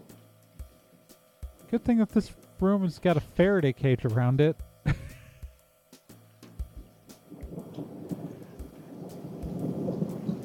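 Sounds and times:
speech: 0:01.7 - 0:05.0
low thunder rumbling during a rainy thunderstorm: 0:07.3 - 0:10.4.

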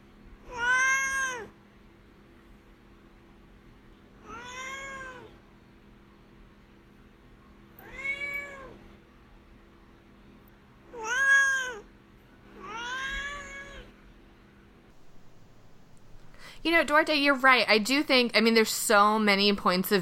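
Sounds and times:
faint hum: 0:00.0 - 0:20.0
male cat meowing: 0:00.5 - 0:01.5, 0:04.2 - 0:05.3, 0:07.8 - 0:08.8, 0:10.9 - 0:11.9, 0:12.6 - 0:13.9
speech: 0:16.6 - 0:20.0.

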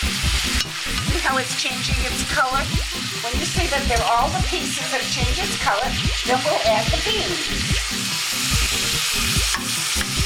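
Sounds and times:
meat and onions sauteing in a pan: 0:00.0 - 0:10.2
speech: 0:01.4 - 0:08.0.

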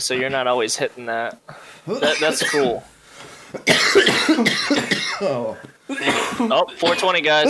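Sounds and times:
speech: 0:00.0 - 0:02.9, 0:03.5 - 0:07.4
person coughing: 0:01.9 - 0:02.8, 0:03.6 - 0:07.0.

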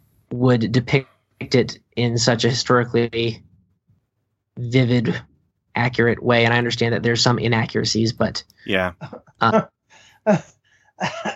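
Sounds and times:
speech: 0:00.3 - 0:03.5, 0:04.6 - 0:11.3
person clearing throat: 0:08.7 - 0:09.0.

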